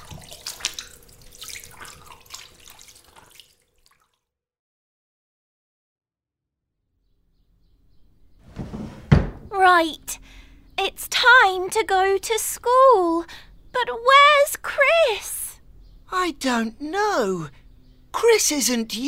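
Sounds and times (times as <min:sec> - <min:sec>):
shower water running: 0:00.0 - 0:04.2
speech: 0:09.8 - 0:15.4, 0:16.1 - 0:19.0.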